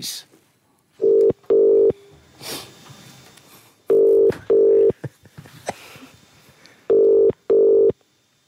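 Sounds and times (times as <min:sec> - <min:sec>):
telephone ringback tone double ring: 0:01.0 - 0:01.9, 0:03.9 - 0:04.9, 0:06.9 - 0:07.9.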